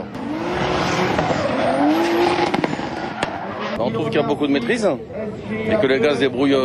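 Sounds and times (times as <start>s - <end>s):
car engine revving on a closed circuit: 0.0s - 3.8s
tire squeal from cars drifting: 0.2s - 3.8s
speech: 3.8s - 6.6s.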